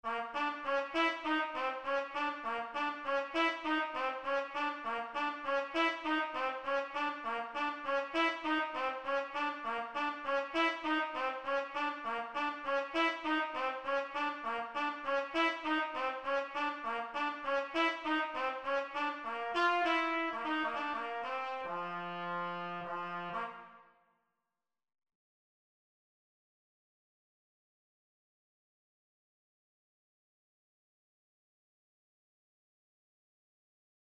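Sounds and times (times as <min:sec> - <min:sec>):
powerful trumpets: 0:00.0 - 0:24.0.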